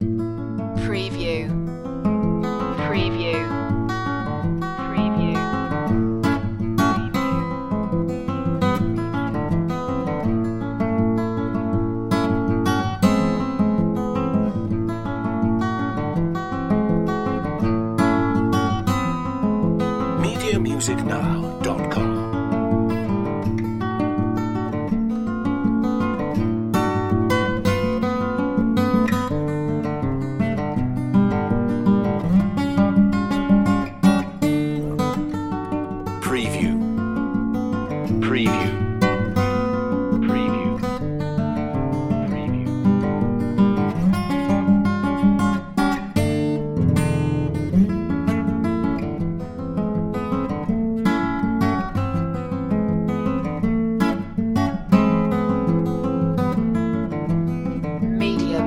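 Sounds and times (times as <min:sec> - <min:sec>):
acoustic guitar: 0:00.0 - 0:58.6.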